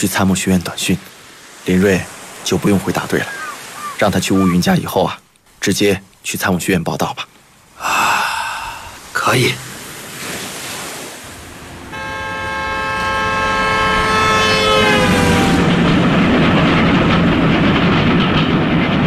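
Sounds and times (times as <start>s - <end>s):
speech: 0.0s - 3.4s, 4.0s - 7.3s, 9.3s - 9.7s
train roaring past across open country: 11.4s - 19.0s
long train horn blast: 11.8s - 15.9s.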